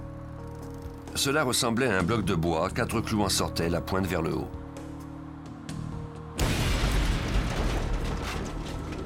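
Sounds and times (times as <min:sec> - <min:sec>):
speech: 0:01.1 - 0:04.6
bomb explosion: 0:06.4 - 0:09.0
roaring rumble with crackling debris: 0:06.4 - 0:09.0.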